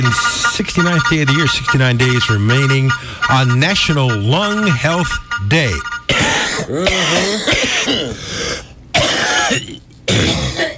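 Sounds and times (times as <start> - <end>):
speech: 0.0 - 8.6, 9.5 - 10.7
wet phlegmy coughing: 6.0 - 10.7
throat clearing: 6.1 - 8.2, 9.0 - 10.7.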